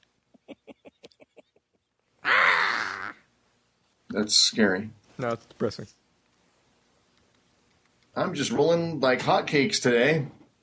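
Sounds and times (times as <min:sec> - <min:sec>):
voice imitating a bird with a loud harsh cawing squawk: 0:02.2 - 0:03.2
speech: 0:04.2 - 0:06.0, 0:08.2 - 0:10.4.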